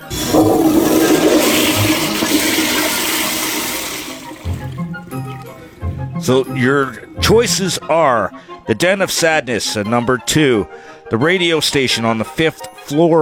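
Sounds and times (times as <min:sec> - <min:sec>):
toilet flushing: 0:00.0 - 0:05.8
water gurgling and trickling as the toilet tank refills: 0:00.0 - 0:05.9
speech: 0:06.3 - 0:13.2.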